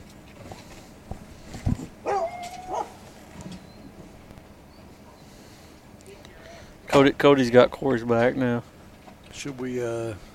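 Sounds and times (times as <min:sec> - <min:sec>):
hunting dogs barking in a field: 0:02.0 - 0:03.1
speech: 0:07.0 - 0:08.7, 0:09.4 - 0:10.3.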